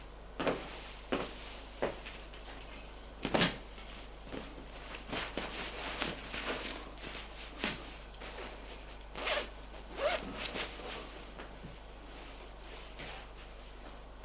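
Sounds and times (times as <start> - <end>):
clothing rustling as a person gets dressed: 0.4 - 13.9
zipper as a person gets dressed: 9.1 - 10.7.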